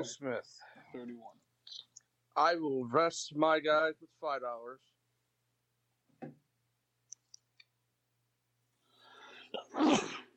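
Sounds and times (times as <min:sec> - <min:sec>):
speech: 0:00.0 - 0:04.9
faint clicks: 0:07.1 - 0:07.8
breathy intake before a sneeze: 0:08.9 - 0:10.3
person sneezing: 0:09.4 - 0:10.3.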